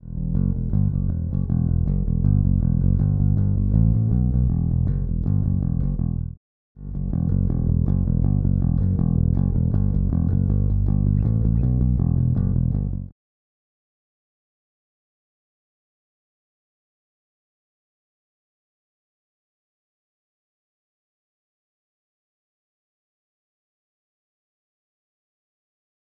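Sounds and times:
Sadowsky bass guitar with Aguilar pickups: 0.0 - 13.1.

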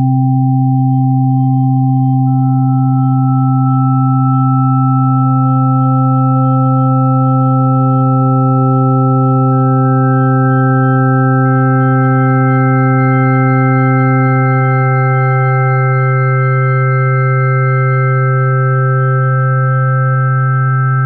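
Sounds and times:
Hammond SK1 organ drawbars dry: 0.1 - 21.0.

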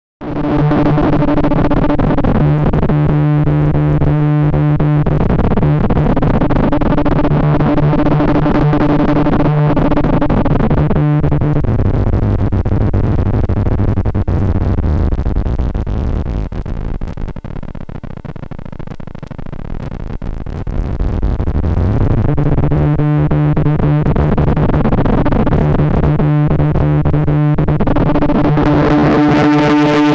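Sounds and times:
MS-20 unstable synth effects: 0.6 - 30.1.

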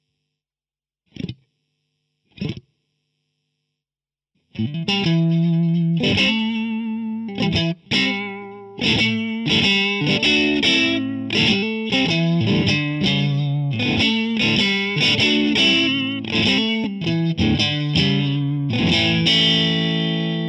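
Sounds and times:
vintage Strat electric guitar: 4.6 - 20.4.

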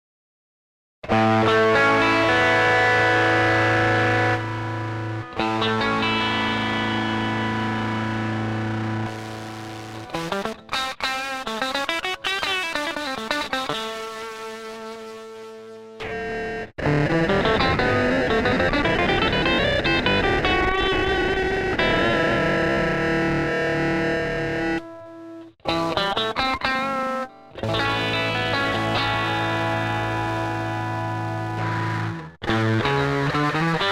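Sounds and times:
distorted 8-bit crushed Stratocaster electric guitar: 1.1 - 33.9.

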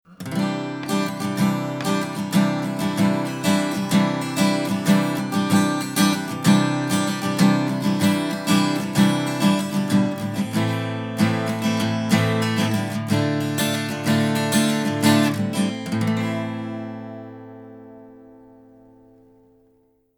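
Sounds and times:
Harley Benton D-120 CE acoustic guitar strumming: 0.1 - 20.0.

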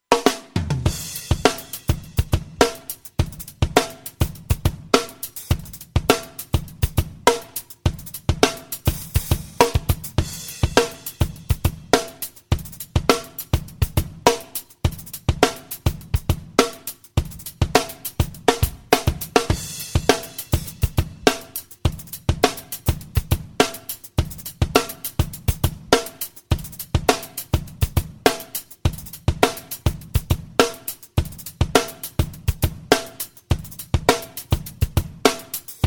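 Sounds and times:
natural drums playing at medium tempo: 0.0 - 35.8.

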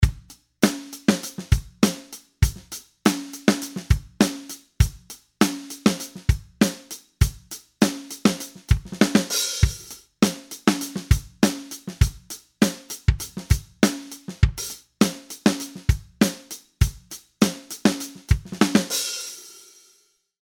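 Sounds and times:
dry drums recorded through a USB mixer: 0.0 - 19.5.

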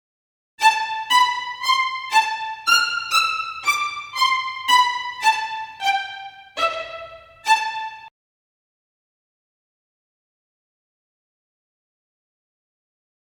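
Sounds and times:
violins playing spiccato: 0.6 - 8.1.

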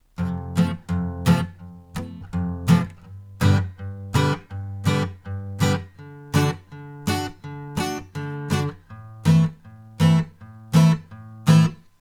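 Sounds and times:
guitar recorded through a condenser microphone: 0.2 - 11.8.

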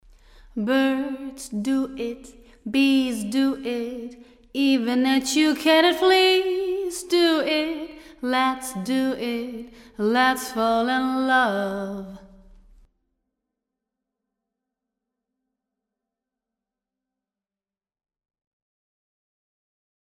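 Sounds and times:
vocal in a big studio: 0.5 - 12.4.

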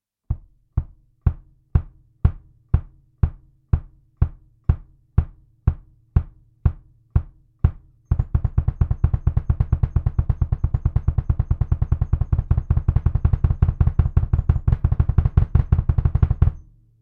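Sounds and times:
double kick drum: 0.3 - 16.6.

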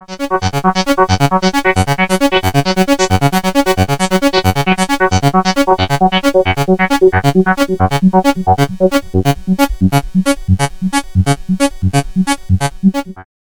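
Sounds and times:
ARP Avatar synthesizer patch: 0.0 - 13.3.

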